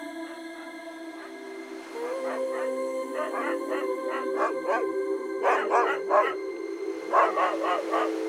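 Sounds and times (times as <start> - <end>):
dog howling: 0.2 - 6.4, 7.0 - 8.2
several dogs barking: 2.0 - 6.4, 7.1 - 8.2.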